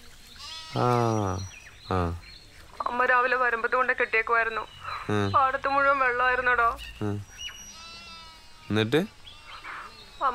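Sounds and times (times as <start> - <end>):
young goat kept at home bleating: 0.4 - 1.5, 7.6 - 10.3
speech: 0.7 - 2.3, 2.9 - 7.3, 8.7 - 9.2, 10.2 - 10.3.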